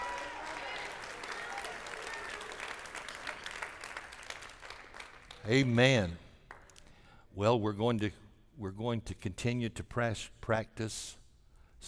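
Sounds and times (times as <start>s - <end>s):
audience clapping hands in applause: 0.0s - 5.7s
speech: 5.4s - 6.2s, 7.4s - 11.2s.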